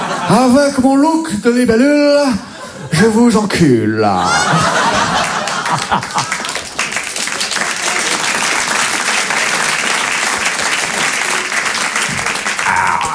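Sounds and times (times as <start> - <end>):
speech: 0.3 - 4.6, 5.7 - 6.4
people chuckling: 4.1 - 6.6, 12.1 - 13.1
crowd applauding: 4.7 - 13.1.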